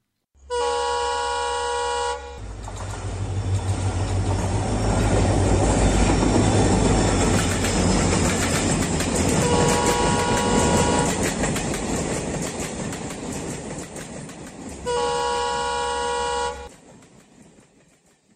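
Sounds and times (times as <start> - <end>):
mobile hospital train horn blasts in India: 0.4 - 2.5, 9.4 - 11.3, 14.8 - 16.7
mobile hospital train wheels clattering in India: 2.4 - 18.3.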